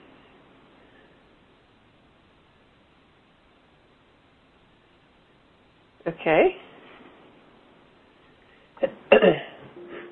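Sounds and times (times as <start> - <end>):
faint hum: 0.0 - 10.1
speech: 6.1 - 6.7
person coughing: 9.1 - 10.1.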